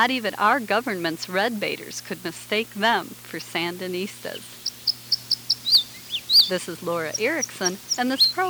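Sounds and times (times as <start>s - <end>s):
speech: 0.0s - 4.6s, 6.5s - 8.4s
red crossbill calling with short high chip notes: 2.7s - 8.4s.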